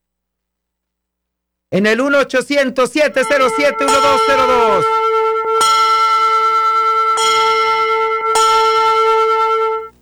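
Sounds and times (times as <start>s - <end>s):
speech: 1.7s - 5.0s
loud bells ringing: 3.2s - 10.0s.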